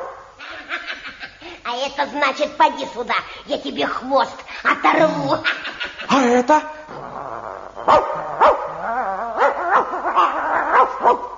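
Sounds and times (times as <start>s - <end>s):
speech: 1.7s - 6.8s
dog making whiny warbling howl-like cries: 7.1s - 11.2s
dog barking: 7.9s - 8.8s, 9.4s - 11.3s.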